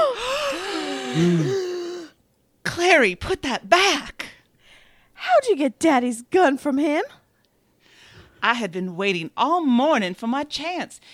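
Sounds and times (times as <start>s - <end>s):
several people gasping in shock: 0.1s - 2.1s
speech: 1.2s - 1.6s, 2.8s - 4.2s, 5.2s - 7.2s, 8.4s - 11.1s.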